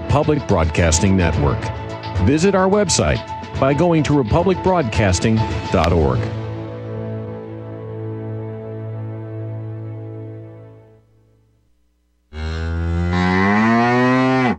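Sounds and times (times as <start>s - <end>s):
speech: 0.1s - 6.4s
cow mooing: 12.3s - 14.5s.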